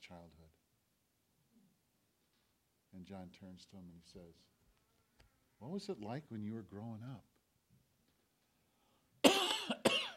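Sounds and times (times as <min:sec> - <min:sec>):
speech: 0:03.0 - 0:04.6, 0:05.6 - 0:07.3
dry coughs from a tickle in the throat: 0:09.2 - 0:10.1.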